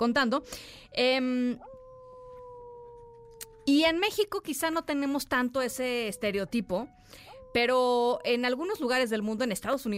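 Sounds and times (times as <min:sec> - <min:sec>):
speech: 0:00.0 - 0:01.7, 0:03.7 - 0:09.9
small dog howling high-pitched: 0:01.4 - 0:04.2, 0:05.6 - 0:09.0.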